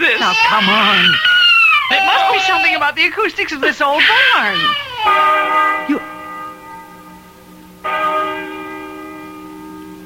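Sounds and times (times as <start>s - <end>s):
speech: 0.3s - 1.3s, 1.9s - 6.2s
large resonant bell tolling: 5.1s - 10.0s.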